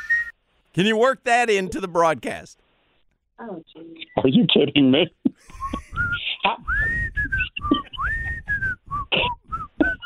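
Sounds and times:
speech: 0.8 - 2.6, 3.4 - 7.8
person whistling a bright bouncy melody: 5.5 - 10.0.

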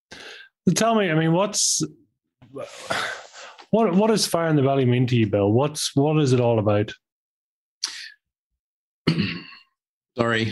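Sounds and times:
speech: 0.7 - 7.0, 10.2 - 10.4
person coughing: 9.0 - 9.7.

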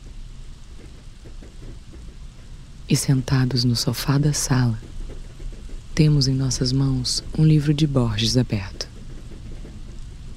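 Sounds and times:
heavy rain beating on the window outside a house: 0.0 - 10.3
speech: 2.9 - 4.9, 6.0 - 8.8.

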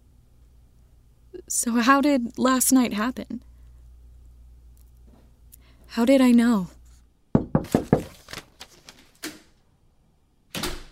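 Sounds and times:
speech: 1.4 - 3.5, 5.9 - 6.8
loud rapid knocking on a door: 7.4 - 8.2.

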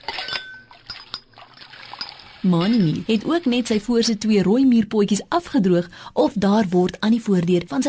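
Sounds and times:
running water trickling and splashing in a sink: 0.0 - 4.2
speech: 2.4 - 7.8.

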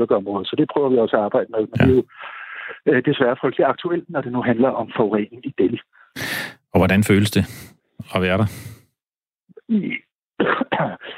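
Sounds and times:
speech: 0.0 - 8.8, 9.7 - 10.0
person coughing: 1.8 - 2.0, 9.8 - 11.1
throat clearing: 1.8 - 2.0, 9.8 - 11.1.

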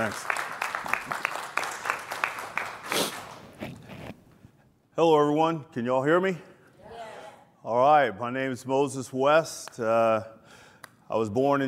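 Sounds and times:
speech: 0.0 - 0.4, 5.0 - 6.5, 7.6 - 10.4, 11.1 - 11.6
audience applause greeting a speaker at a talk: 0.0 - 3.4.

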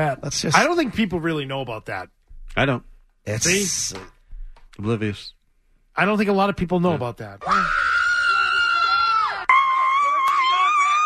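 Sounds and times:
speech: 0.0 - 4.2, 4.8 - 5.4, 6.0 - 7.9
woman screaming: 7.4 - 11.0.

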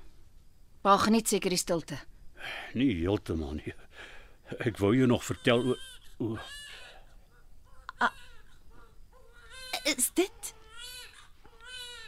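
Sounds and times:
speech: 0.8 - 6.7, 8.0 - 8.3, 9.8 - 10.6
adult voice speaking: 2.5 - 3.8, 4.4 - 6.9
baby crying: 5.2 - 12.0.

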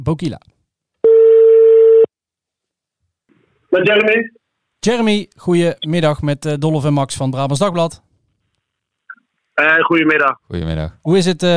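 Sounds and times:
speech: 0.0 - 0.5, 3.7 - 8.1, 9.6 - 11.5
telephone ringback tone while placing a call: 1.0 - 2.1.

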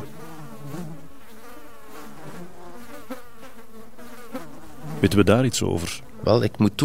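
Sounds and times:
mosquitoes buzzing: 0.0 - 6.7
speech: 5.0 - 6.8.

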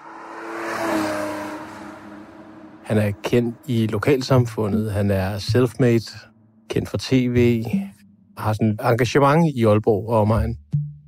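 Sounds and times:
fast car engine revving: 0.0 - 7.9
speech: 2.9 - 10.7.

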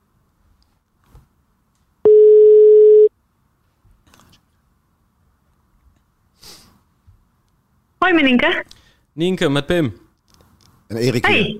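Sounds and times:
telephone ringback tone while placing a call: 2.1 - 3.1
speech: 8.1 - 10.0, 10.9 - 11.5.

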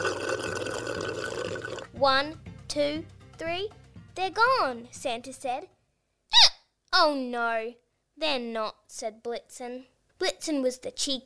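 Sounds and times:
gulping water from a glass: 0.0 - 1.9
speech: 2.0 - 5.8, 7.0 - 11.2.

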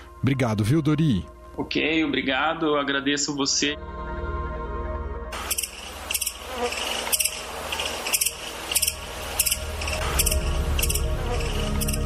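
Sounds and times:
speech: 0.2 - 4.0, 6.6 - 7.0
dense swarm of locusts buzzing and rasping: 5.3 - 12.0.

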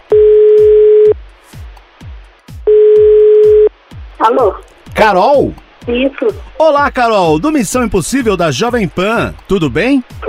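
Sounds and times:
ringback tone of an outgoing telephone call: 0.1 - 1.2, 2.7 - 3.7
speech: 4.3 - 10.2.

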